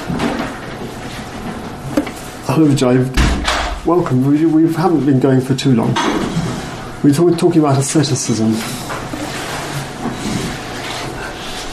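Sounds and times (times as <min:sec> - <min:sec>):
steady hum: 0:00.0 - 0:11.7
speech: 0:02.6 - 0:06.4, 0:07.0 - 0:08.8
door being pushed open with a scraping rattle: 0:03.2 - 0:03.8.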